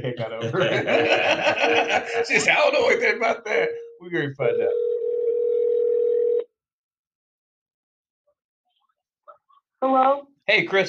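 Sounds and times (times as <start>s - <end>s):
laughter: 0.0s - 3.7s
speech: 0.0s - 4.9s, 9.8s - 10.8s
steady telephone tone: 4.5s - 6.5s.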